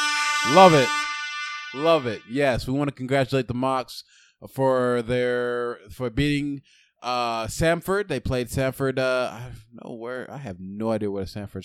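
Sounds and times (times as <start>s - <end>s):
air horn blast: 0.0s - 2.6s
speech: 0.4s - 1.0s, 1.7s - 11.6s.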